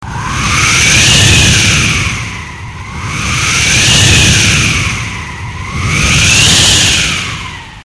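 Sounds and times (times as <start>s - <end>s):
long wind of fairground ride: 0.0s - 7.8s.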